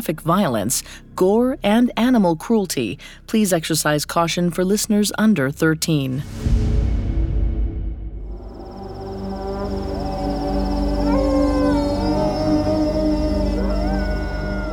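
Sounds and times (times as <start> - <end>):
speech: 0.0 - 6.7
steady low rumble: 6.3 - 11.0
thin high whine: 8.3 - 14.7
wolves, jackals and desert dogs howling at night among desert dunes: 8.6 - 14.7.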